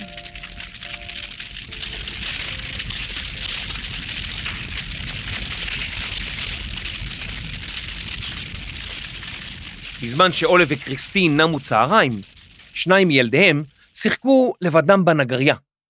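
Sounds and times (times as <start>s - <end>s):
big fire burning a wooden carpentry workshop attached to a house: 0.0s - 14.7s
speech: 10.0s - 15.7s.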